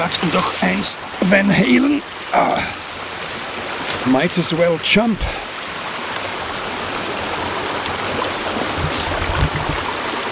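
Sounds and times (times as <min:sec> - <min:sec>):
stream water splashing: 0:00.0 - 0:02.3, 0:07.0 - 0:10.3
speech: 0:00.0 - 0:02.8, 0:04.0 - 0:05.5
flowing stream water gurgling: 0:00.0 - 0:10.3.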